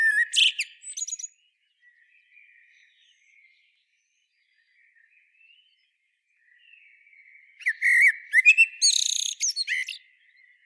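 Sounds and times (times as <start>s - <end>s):
Common blackbird Turdus merula whistling and twittering: 0.0s - 1.3s, 7.6s - 10.0s.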